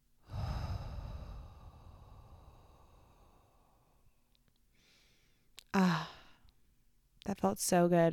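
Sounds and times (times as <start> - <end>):
deep breath in and out: 0.2 - 6.4
speech: 7.4 - 8.1.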